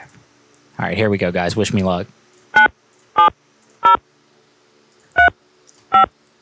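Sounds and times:
speech: 0:00.8 - 0:02.7
telephone keypad tones entering a zip code into an automated phone system: 0:05.9 - 0:06.1.

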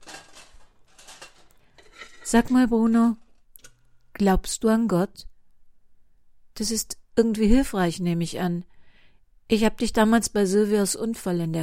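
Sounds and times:
metal pans clattering and scraping on a stovetop making pancakes: 0:00.0 - 0:03.8
speech: 0:02.3 - 0:03.2, 0:04.2 - 0:05.3, 0:06.6 - 0:08.7, 0:09.5 - 0:11.6.

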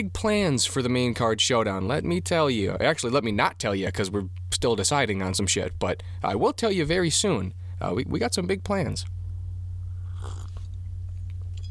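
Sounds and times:
speech: 0:00.0 - 0:09.2
steady low hum: 0:00.0 - 0:11.6
wet sip of coffee with slurping: 0:10.0 - 0:10.7
swallowing: 0:10.0 - 0:10.8.

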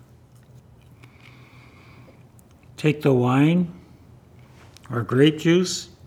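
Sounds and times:
crisp chewing of bread or a wafer: 0:00.0 - 0:01.4
speech: 0:02.8 - 0:03.8, 0:04.9 - 0:05.9.

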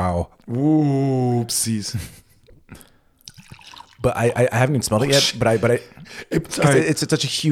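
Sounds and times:
speech: 0:00.1 - 0:02.8, 0:04.0 - 0:07.4
whiskey dripping and plinking into a glass: 0:02.4 - 0:06.1
Irish whiskey splashing into a glass: 0:03.2 - 0:05.2.

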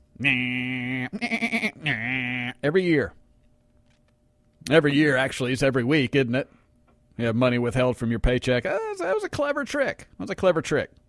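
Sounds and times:
sheep bleating loudly with drawn-out calls: 0:00.2 - 0:02.6
speech: 0:00.2 - 0:03.2, 0:04.7 - 0:06.6, 0:07.2 - 0:11.0.

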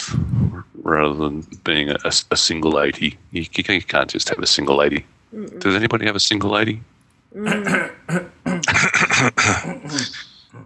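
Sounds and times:
speech: 0:00.9 - 0:08.4, 0:09.2 - 0:10.6
person clearing throat: 0:07.4 - 0:10.6.

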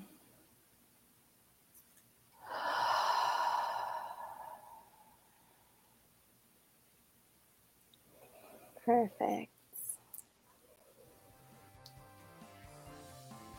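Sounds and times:
deep conscious breath: 0:02.4 - 0:06.0
speech: 0:08.9 - 0:09.5.

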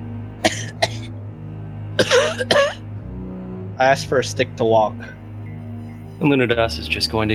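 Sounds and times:
person coughing: 0:00.4 - 0:01.1, 0:02.0 - 0:02.8
speech: 0:02.2 - 0:02.8, 0:03.8 - 0:05.2, 0:06.2 - 0:07.3.

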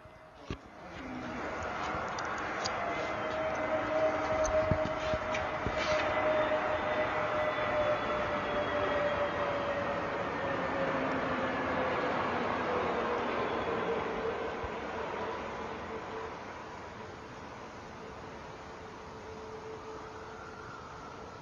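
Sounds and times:
low steady jet roar: 0:00.0 - 0:16.5
faint whining tone: 0:00.0 - 0:21.4.

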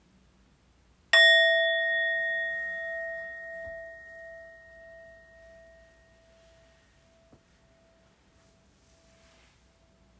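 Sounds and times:
meditation bell ringing: 0:01.2 - 0:08.0.

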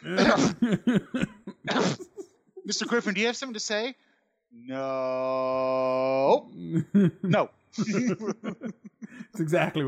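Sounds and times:
speech: 0:00.0 - 0:01.3, 0:02.7 - 0:04.0, 0:04.7 - 0:08.6, 0:09.4 - 0:09.8
person acting out loud voiced coughs: 0:00.0 - 0:03.1
laughter: 0:00.2 - 0:03.3, 0:06.8 - 0:09.8.

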